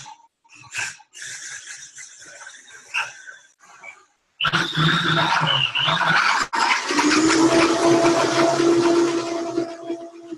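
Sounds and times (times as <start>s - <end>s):
speech: 4.5s - 6.4s
blender running on low mixing coconut butter with other ingredients: 6.2s - 10.3s.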